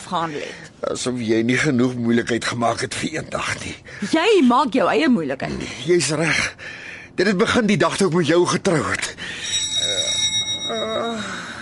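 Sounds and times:
faint steady hum: 0.0 - 11.5
speech: 0.1 - 9.4, 10.7 - 11.4
front doorbell ringing in short electric bursts: 9.3 - 11.5.

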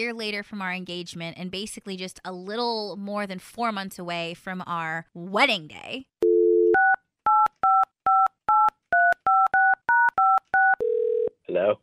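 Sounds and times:
speech: 0.0 - 6.2, 11.6 - 11.8
phone dial tone: 6.2 - 11.3.

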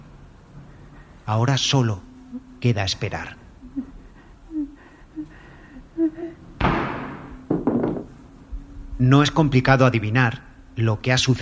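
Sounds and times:
speech: 1.3 - 3.9, 9.0 - 11.4
single loud gunshot with a long tail: 6.6 - 7.2.

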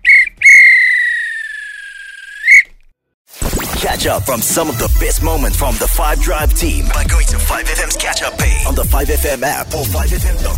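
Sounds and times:
referee's whistle blasts: 0.0 - 1.6
speech: 3.8 - 10.5.

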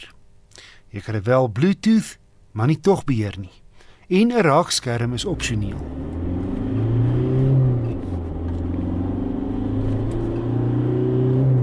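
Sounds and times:
speech: 0.9 - 6.2
2.5 turbo diesel pickup engine revving: 5.1 - 11.6.

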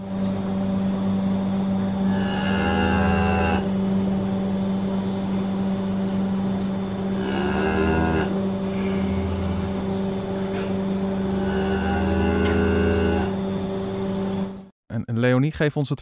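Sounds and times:
steady droning mechanical hum: 0.0 - 14.7
cow mooing: 2.0 - 3.8, 7.1 - 13.4
speech: 15.5 - 16.0.

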